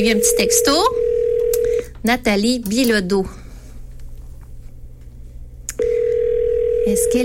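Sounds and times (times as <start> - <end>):
speech: 0.0 - 1.0, 2.0 - 3.4, 6.9 - 7.2
telephone line ringing while calling someone: 0.0 - 1.9, 5.8 - 7.2.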